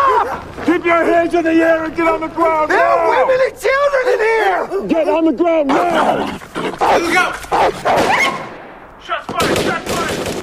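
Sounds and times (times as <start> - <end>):
people shouting: 0.0 - 8.5
speech: 1.2 - 8.4
gunshots during an armed confrontation with law enforcement agents: 7.5 - 10.4.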